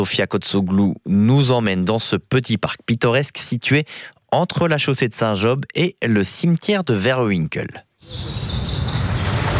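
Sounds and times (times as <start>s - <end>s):
speech: 0.0s - 8.8s
thin high bird chirps: 8.0s - 9.4s.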